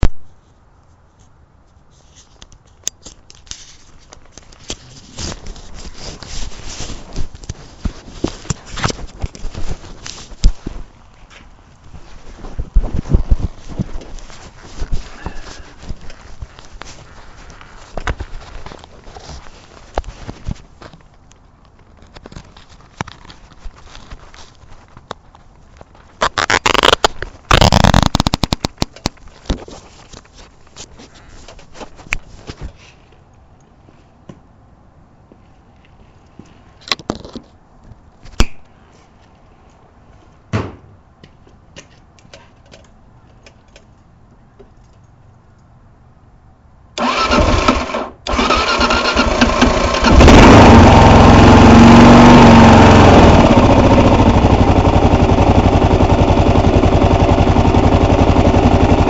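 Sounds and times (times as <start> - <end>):
unidentified motorcycle noise: 0.0 - 59.0
KLR650 motorcycle riding: 47.0 - 59.0.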